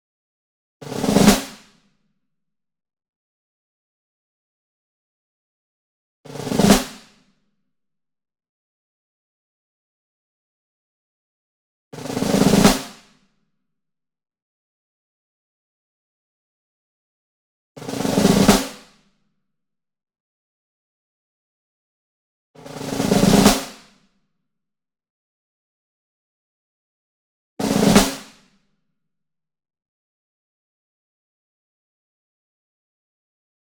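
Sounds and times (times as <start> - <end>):
single high tension snare drum roll: 0.9 - 1.7, 6.4 - 7.2, 12.1 - 13.1, 17.9 - 19.0, 22.7 - 23.9, 27.6 - 28.4.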